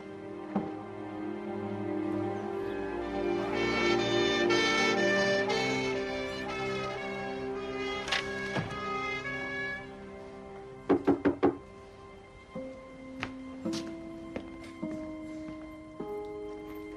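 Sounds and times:
musical score with soft plucked notes: 0.0 - 16.9
firm knocking on a door: 10.9 - 11.6.

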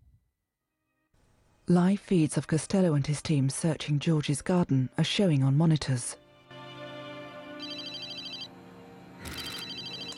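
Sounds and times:
speech: 1.7 - 6.2
phone ringing with a bright electronic ringtone: 7.6 - 8.6, 9.2 - 10.1.

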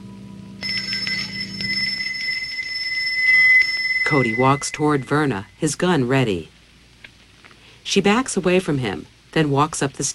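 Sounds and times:
bell on the front door of a house ringing: 0.6 - 5.6
speech: 4.1 - 6.5, 7.9 - 10.1.

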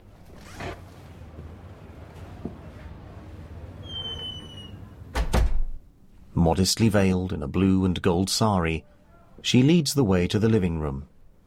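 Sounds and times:
home door creaking as it is opened cautiously: 0.2 - 0.9, 3.8 - 5.8
home door clunking as it swings open: 5.1 - 5.8
speech: 6.5 - 11.1.

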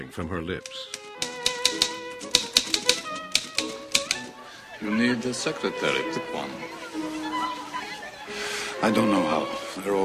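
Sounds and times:
speech: 0.0 - 1.0, 4.8 - 6.8, 8.8 - 10.0
gruff middle-aged woman typing on a typewriter: 0.9 - 4.3
laughter: 4.3 - 9.6.

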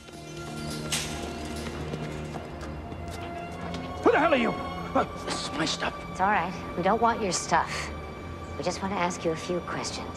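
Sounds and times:
hard footsteps on pavement: 0.0 - 4.8
speech: 4.2 - 8.0, 8.6 - 10.1.

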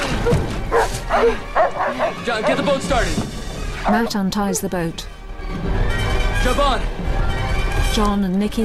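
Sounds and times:
dogs barking as they run toward the water: 0.2 - 5.1
speech: 1.2 - 5.7, 6.4 - 7.1, 8.0 - 8.6.

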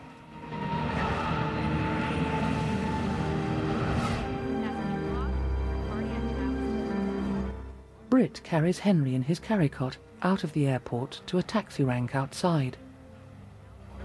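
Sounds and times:
deep low rumble of passenger plane engines: 0.0 - 7.0
passenger plane landing on runway: 0.0 - 7.2
speech: 8.2 - 12.8.

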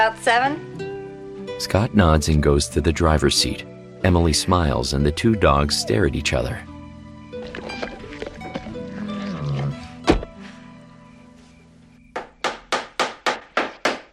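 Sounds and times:
speech: 0.0 - 0.8, 1.6 - 6.7
hammer driving boards onto a broken laundry room door: 12.2 - 14.1.

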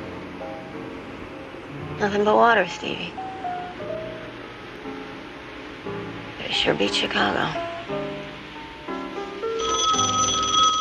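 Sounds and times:
speech: 2.0 - 3.2, 6.5 - 8.0
telephone ringing inside a lighthouse at night: 9.6 - 10.7.

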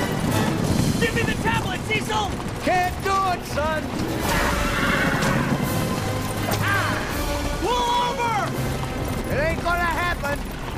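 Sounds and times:
galloping hooves: 0.0 - 10.7
rolling stagecoach wheels: 0.0 - 10.7
speech: 1.0 - 5.1
horse neighing while pulling a stagecoach: 3.6 - 8.6.

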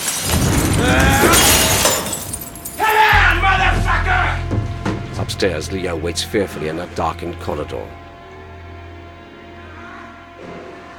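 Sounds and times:
glass shards tinkling and scattering: 0.0 - 3.2
glass display case being smashed in a study: 0.0 - 4.9
low rumble: 3.2 - 8.6
speech: 5.4 - 8.0.

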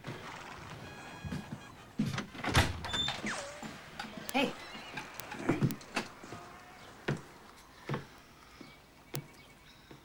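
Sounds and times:
hoofbeats: 0.0 - 9.4
door being unlatched and swung open: 0.8 - 6.4
speech: 4.4 - 4.6.

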